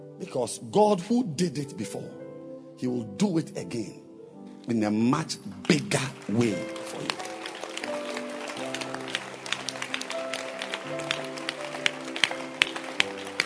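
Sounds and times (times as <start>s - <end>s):
keyboard or organ chords: 0.0s - 13.4s
speech: 0.2s - 2.2s, 2.8s - 4.0s, 4.7s - 7.2s
crowd clapping: 5.2s - 13.4s.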